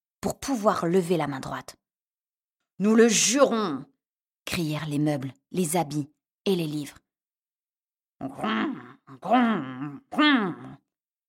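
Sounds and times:
speech: 0.2s - 1.8s, 2.8s - 3.9s, 4.5s - 7.0s, 8.2s - 10.8s
human voice imitating brown bear grunting: 8.2s - 10.8s.

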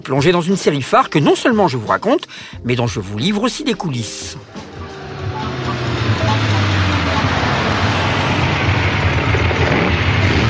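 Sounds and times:
speech: 0.0s - 4.7s
car engine roaring at a red light: 4.4s - 10.4s.

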